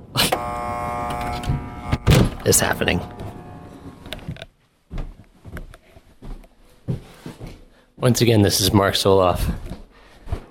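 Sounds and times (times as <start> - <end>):
apartment door buzzer: 0.2 - 4.3
speech: 2.5 - 3.2, 8.0 - 9.7.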